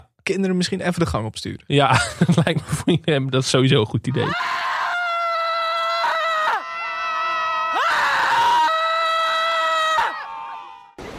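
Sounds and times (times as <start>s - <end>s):
speech: 0.3s - 4.6s
laughter: 1.9s - 3.0s
people screaming: 4.1s - 11.0s.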